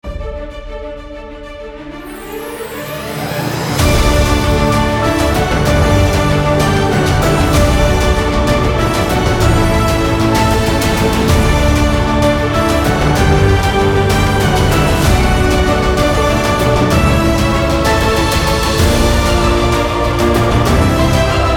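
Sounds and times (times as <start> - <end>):
ceremonial fanfare: 2.0 - 21.5.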